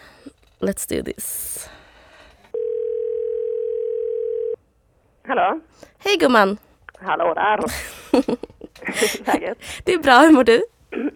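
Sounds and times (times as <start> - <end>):
speech: 0.2 - 1.8, 5.3 - 11.1
telephone ringing tone during an outgoing phone call: 2.5 - 4.6
laughter: 7.6 - 9.6.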